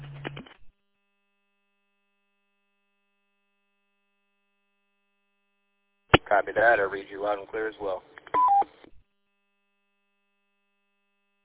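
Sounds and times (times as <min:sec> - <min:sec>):
speech: 0:06.4 - 0:08.2
electronic roger beep at the end of a radio transmission on a repeater network: 0:08.3 - 0:08.7.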